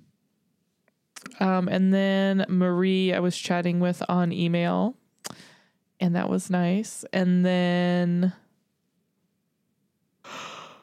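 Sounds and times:
speech: 1.4s - 5.4s, 6.0s - 8.4s
person yawning: 10.2s - 10.8s.

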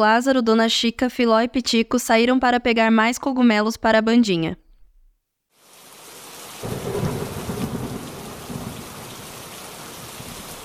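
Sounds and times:
speech: 0.0s - 4.6s
steady rain pouring: 5.5s - 10.6s
low rumble of thunder: 6.6s - 10.6s.

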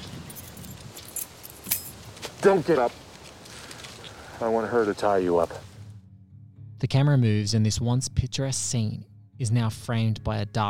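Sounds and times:
metal keys jangling: 0.0s - 2.0s
speech: 2.4s - 3.0s, 4.4s - 5.7s, 6.8s - 10.6s.

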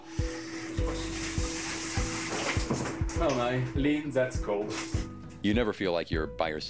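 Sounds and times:
shower water running: 0.0s - 5.2s
speech: 3.2s - 6.6s.

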